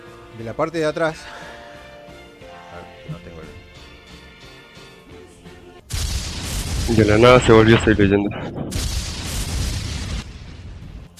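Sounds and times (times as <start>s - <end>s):
speech: 0.4s - 1.5s, 6.9s - 8.9s
explosive boom imitating a firecracker blast: 5.9s - 11.1s.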